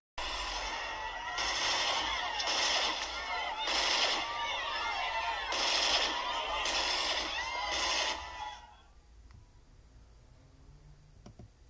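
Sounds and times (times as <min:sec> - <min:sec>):
bursts of gunfire: 0:00.2 - 0:08.4
dense noisy background: 0:00.2 - 0:09.0.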